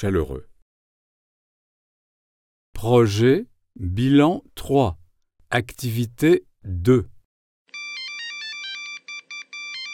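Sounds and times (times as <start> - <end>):
speech: 0.0 - 0.5, 2.8 - 7.1
telephone ringing with a faint electronic melodic ringtone: 7.7 - 9.9.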